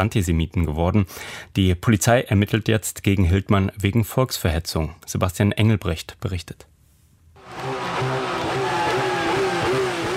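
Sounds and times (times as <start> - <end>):
speech: 0.0 - 6.7
powerful sports car engine revving: 7.4 - 10.1.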